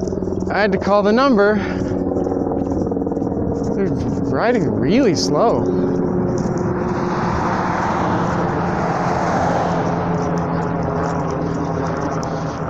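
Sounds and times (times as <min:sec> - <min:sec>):
helicopter flying overhead: 0:00.0 - 0:12.6
speech: 0:00.5 - 0:01.9, 0:03.8 - 0:06.0.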